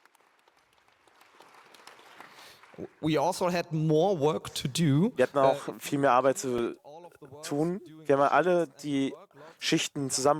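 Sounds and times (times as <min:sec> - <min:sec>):
faint audience applause at a large congress: 0:00.0 - 0:03.2
speech: 0:02.8 - 0:06.8, 0:07.4 - 0:10.3.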